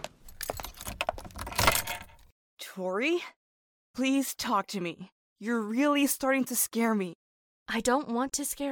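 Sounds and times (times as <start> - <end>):
metal keys jangling: 0.2 - 2.3
speech: 2.8 - 3.4, 4.0 - 8.7.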